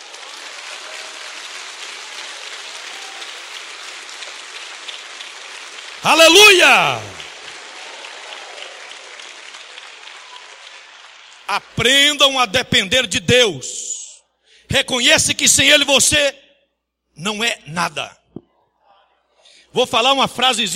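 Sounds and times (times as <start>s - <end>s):
audience at a Christian sermon applauding: 0.0s - 12.0s
speech: 6.0s - 7.1s, 11.5s - 13.9s, 14.7s - 16.4s, 17.2s - 18.2s, 19.7s - 20.7s
person shouting out at a Christian sermon: 6.0s - 7.2s.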